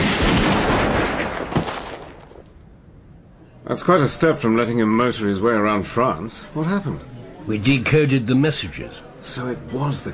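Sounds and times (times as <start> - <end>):
firing squad volley of gunshots: 0.0 - 2.4
speech: 3.7 - 10.1.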